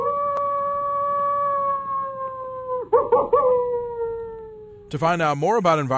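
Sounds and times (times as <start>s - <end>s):
coyote howling: 0.0s - 4.9s
speech: 4.9s - 5.9s.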